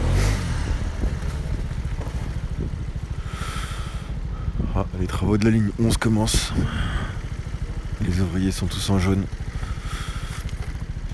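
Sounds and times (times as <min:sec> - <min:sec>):
gust of wind buffeting the microphone: 0:00.0 - 0:08.0
small scooter engine revving on a snow-covered street while parking: 0:00.0 - 0:11.1
speech: 0:05.2 - 0:07.0, 0:08.1 - 0:10.0.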